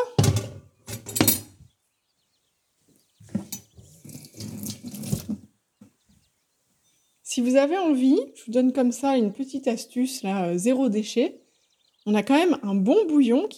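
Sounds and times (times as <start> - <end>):
dishes clinking: 0.0 - 1.6, 3.3 - 5.3
running kitchen tap: 3.4 - 5.4
splashing water while washing dishes: 3.4 - 5.5
speech: 7.4 - 11.4, 12.0 - 13.5.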